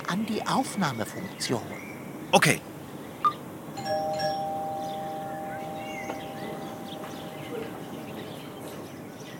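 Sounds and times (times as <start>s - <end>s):
steady outdoor ambience: 0.0s - 9.3s
speech: 0.1s - 2.7s
electronic doorbell chime: 3.8s - 7.8s.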